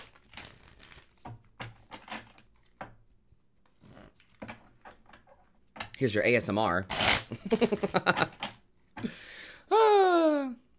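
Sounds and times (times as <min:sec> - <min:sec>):
paper question slips rustling and crinkling as they are shuffled by hand: 0:00.0 - 0:01.3
speech: 0:06.0 - 0:08.4.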